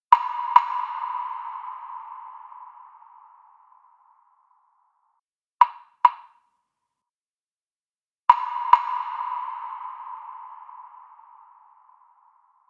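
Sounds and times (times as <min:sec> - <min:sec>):
wood block in a sauna: 0:00.1 - 0:01.6, 0:05.6 - 0:06.4, 0:08.3 - 0:10.0.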